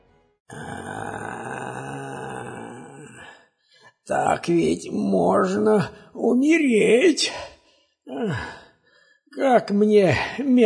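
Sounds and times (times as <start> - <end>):
person imitating a bear's groan: 0.5 - 3.4, 8.1 - 8.6
speech: 4.1 - 7.5, 8.2 - 8.6, 9.4 - 10.6.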